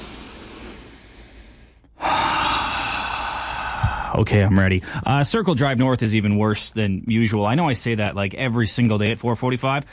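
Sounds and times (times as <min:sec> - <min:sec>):
slow deep breath in and rushing exhale: 0:00.0 - 0:05.2
speech: 0:04.2 - 0:09.9.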